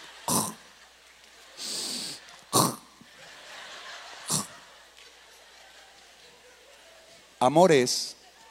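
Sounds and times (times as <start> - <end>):
laughter: 0.0 - 7.3
person imitating soft delicate snoring with puffs and snorts: 4.3 - 4.5.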